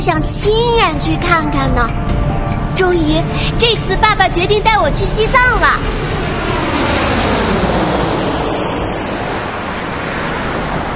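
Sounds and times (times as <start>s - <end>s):
speech: 0.0s - 6.2s
airplane landing at an airport in Tibet: 1.9s - 10.9s.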